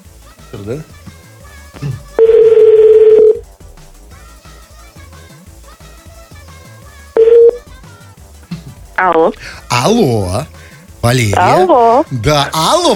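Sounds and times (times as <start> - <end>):
speech: 0.5 - 1.0, 9.0 - 12.9
electronic ringback tone of an outgoing phone call: 2.2 - 3.4, 7.2 - 7.6.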